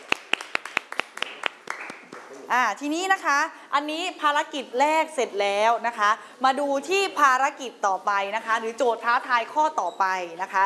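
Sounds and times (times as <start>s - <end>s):
classroom group clapping for a group representative: 0.0s - 2.5s
speech: 2.5s - 10.6s.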